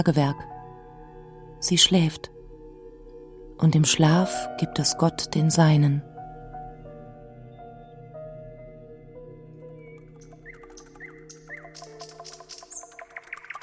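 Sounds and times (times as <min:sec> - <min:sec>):
speech: 0:00.0 - 0:00.5, 0:01.6 - 0:02.4, 0:03.6 - 0:06.1
nightingale singing: 0:07.4 - 0:13.6.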